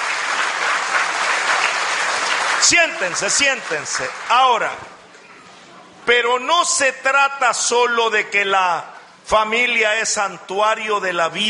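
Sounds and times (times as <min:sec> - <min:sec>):
audience applause: 0:00.0 - 0:04.9
speech: 0:02.6 - 0:05.0, 0:06.1 - 0:11.4.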